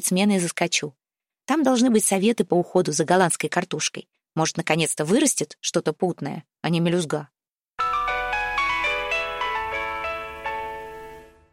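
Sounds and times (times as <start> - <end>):
speech: 0.0 - 7.4
mobile phone ringing with a bright melodic ringtone: 7.8 - 11.5.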